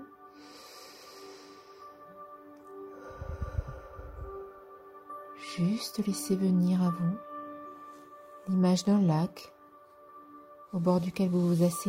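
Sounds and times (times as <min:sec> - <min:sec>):
deep breath with inhale and nasal exhale: 0:00.3 - 0:04.6
speech: 0:05.6 - 0:07.3, 0:08.5 - 0:09.6, 0:10.7 - 0:11.8.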